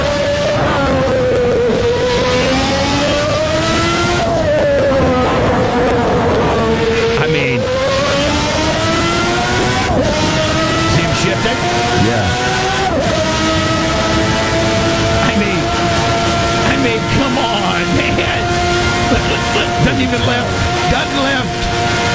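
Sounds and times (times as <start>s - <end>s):
race car engine lapping the Nürburgring circuit at very high speed: 0.0s - 22.1s
race car gear changes: 0.0s - 22.1s
laughter: 10.6s - 12.4s, 15.1s - 22.1s.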